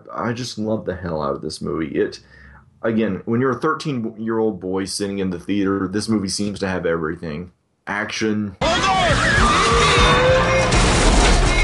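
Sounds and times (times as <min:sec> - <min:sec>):
speech: 0:00.1 - 0:10.7
sweeping whistle-like tones: 0:09.0 - 0:10.7
crackling debris: 0:10.3 - 0:11.6
loud sustained explosion with deep rumbling booms: 0:10.7 - 0:11.6.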